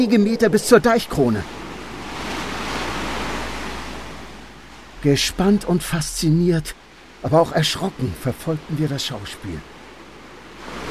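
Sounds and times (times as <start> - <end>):
speech: 0.0 - 1.6, 5.0 - 9.7
wind noise: 0.0 - 7.3
high waves crashing against a sea dike: 0.0 - 10.8.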